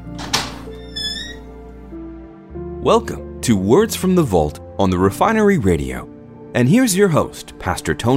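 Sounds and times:
dull thunk of a door opening with a brief scrape: 0.0s - 1.5s
speech: 2.8s - 8.1s.

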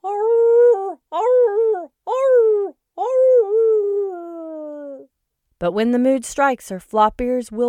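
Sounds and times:
frightened female hound dog howling in a yard: 0.0s - 5.1s
speech: 5.6s - 7.6s.

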